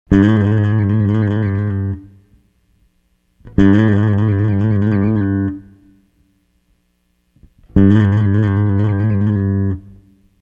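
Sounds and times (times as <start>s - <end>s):
rock bass guitar: 0.1s - 2.3s, 3.4s - 5.9s, 7.4s - 10.2s.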